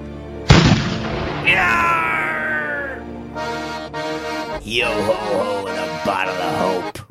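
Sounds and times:
cannon firing: 0:00.5 - 0:02.5
long wavering descending wail: 0:01.2 - 0:03.2
speech: 0:04.6 - 0:06.9.

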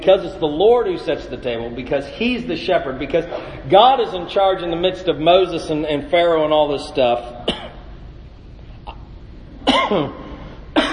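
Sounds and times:
speech: 0:00.0 - 0:07.6, 0:09.9 - 0:10.2
short rough cough: 0:07.4 - 0:07.8, 0:09.6 - 0:10.9.

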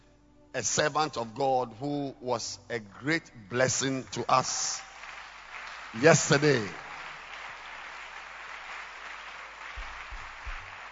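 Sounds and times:
speech: 0:00.5 - 0:04.9, 0:05.9 - 0:06.8
audience clapping at a church service: 0:02.9 - 0:10.9.

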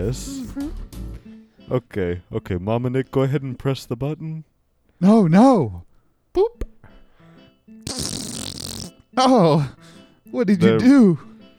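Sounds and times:
speech: 0:00.0 - 0:00.8, 0:01.7 - 0:06.7, 0:09.2 - 0:11.3
whoopee cushion fart noise: 0:07.9 - 0:09.0.

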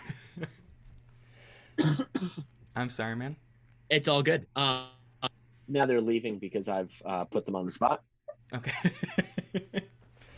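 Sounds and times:
person coughing: 0:01.8 - 0:02.5
speech: 0:01.8 - 0:05.0, 0:05.7 - 0:09.7.

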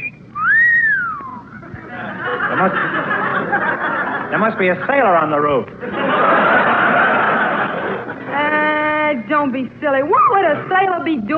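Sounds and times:
eerie whistling tone: 0:00.0 - 0:01.6
laughter: 0:01.6 - 0:04.8, 0:05.8 - 0:08.6
speech: 0:02.6 - 0:02.9, 0:04.4 - 0:06.5, 0:09.4 - 0:11.3.

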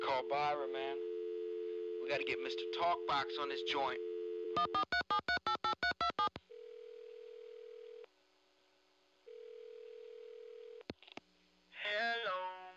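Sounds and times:
steady telephone tone: 0:00.0 - 0:08.1, 0:09.3 - 0:10.8
speech: 0:00.2 - 0:01.2, 0:02.1 - 0:04.8
touch-tone dialing beeps: 0:04.1 - 0:06.3.

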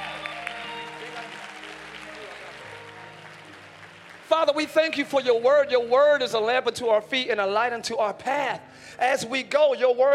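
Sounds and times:
church congregation clapping their hands: 0:00.0 - 0:05.7
speech: 0:04.4 - 0:10.1.

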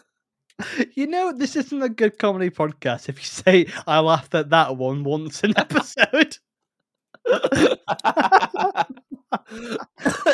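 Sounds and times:
speech: 0:00.8 - 0:06.4, 0:07.3 - 0:10.3
laughter: 0:05.4 - 0:06.2, 0:07.2 - 0:10.3
person coughing: 0:07.3 - 0:08.0, 0:09.6 - 0:10.3.

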